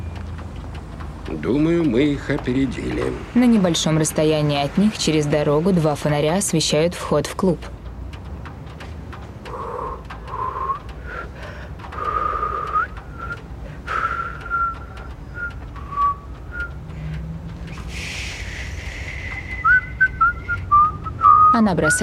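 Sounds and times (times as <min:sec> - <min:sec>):
speech: 0:01.3 - 0:07.8, 0:21.6 - 0:22.0
people whistling outside a club entrance at night: 0:09.5 - 0:11.3, 0:12.0 - 0:22.0.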